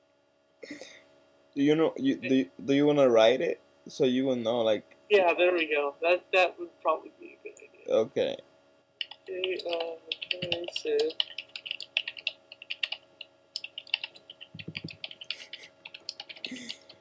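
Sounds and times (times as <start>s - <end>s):
person murmuring: 0.6s - 1.0s, 1.6s - 4.8s, 7.1s - 8.4s, 9.3s - 11.1s, 14.6s - 15.8s, 16.4s - 16.9s
speech: 1.6s - 8.5s, 9.3s - 11.4s
typing on a computer keyboard: 9.0s - 16.9s.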